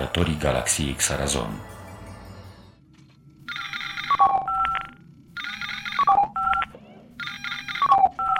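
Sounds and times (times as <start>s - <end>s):
speech: 0.0s - 1.8s
low rumbling hum: 0.0s - 7.2s
electronic incoming-call ringtone for an emergency: 3.4s - 8.3s.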